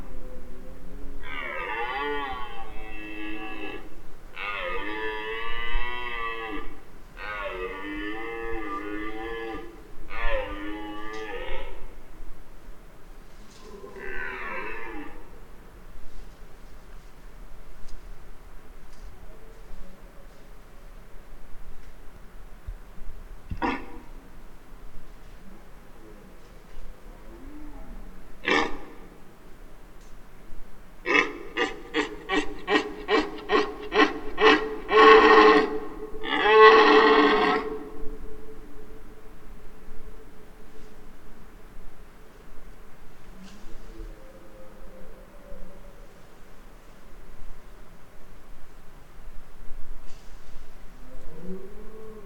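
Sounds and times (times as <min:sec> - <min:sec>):
rutting deer bellowing: 0:01.2 - 0:12.0, 0:27.6 - 0:29.2, 0:31.0 - 0:38.2.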